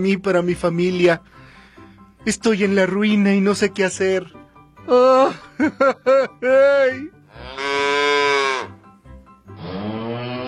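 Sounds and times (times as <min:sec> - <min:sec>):
speech: 0:00.0 - 0:01.4, 0:02.2 - 0:07.8
cow mooing: 0:07.3 - 0:08.8, 0:09.5 - 0:10.4.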